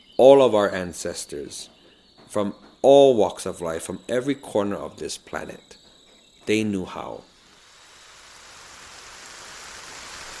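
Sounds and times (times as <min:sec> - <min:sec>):
speech: 0:00.2 - 0:05.8, 0:06.4 - 0:07.3
steady heavy rain falling outside: 0:07.4 - 0:10.3.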